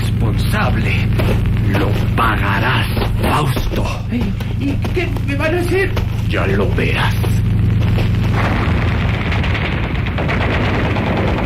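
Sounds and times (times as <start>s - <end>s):
heavy explosions: 0.0s - 4.1s, 4.8s - 11.4s
helicopters firing from the air: 0.0s - 11.4s
speech: 0.6s - 7.4s.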